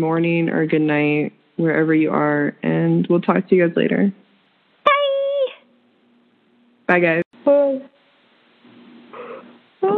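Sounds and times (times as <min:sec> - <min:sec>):
speech: 0:00.0 - 0:04.2, 0:06.9 - 0:07.9, 0:09.2 - 0:09.9
person yawning with a groaning peak: 0:09.2 - 0:09.9.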